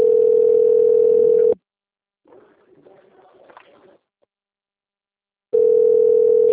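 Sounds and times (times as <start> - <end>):
telephone ringing with an incoming call from a bank: 0.0 - 1.6, 5.6 - 6.5.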